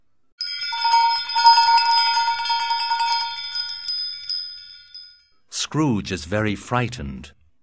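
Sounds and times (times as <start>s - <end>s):
house bells ringing loudly: 0.4s - 5.2s
speech: 5.7s - 7.4s.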